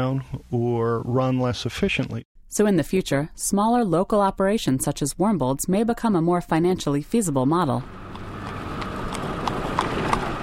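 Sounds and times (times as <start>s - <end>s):
speech: 0.0s - 8.1s
hooves of a horse pulling an Amish buggy on a Pennsylvania road: 8.0s - 10.4s.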